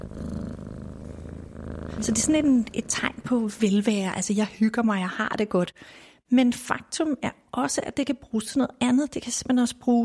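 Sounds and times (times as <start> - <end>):
domestic cat purring: 0.0 - 3.6
speech: 2.0 - 10.0.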